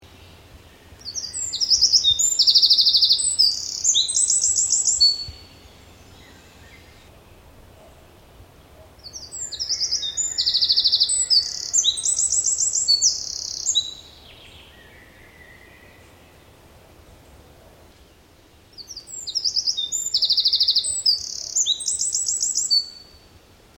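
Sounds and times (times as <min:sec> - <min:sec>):
male wren singing: 0:00.2 - 0:07.1, 0:08.6 - 0:16.1, 0:18.7 - 0:23.2.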